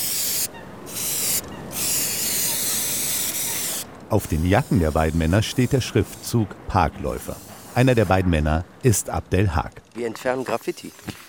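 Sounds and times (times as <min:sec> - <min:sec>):
aerosol spray can spraying a park bench to remove graffiti: 0:00.0 - 0:06.4, 0:07.0 - 0:08.2
speech: 0:04.1 - 0:11.2.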